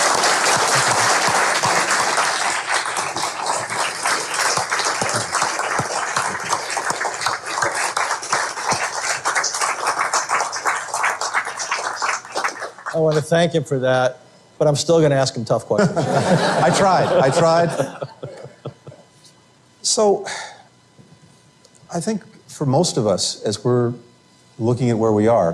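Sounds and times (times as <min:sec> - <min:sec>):
audience applauding: 0:00.0 - 0:13.2
laughter: 0:00.5 - 0:02.2, 0:15.8 - 0:19.1
speech: 0:13.0 - 0:18.1, 0:20.0 - 0:20.4, 0:22.0 - 0:25.5.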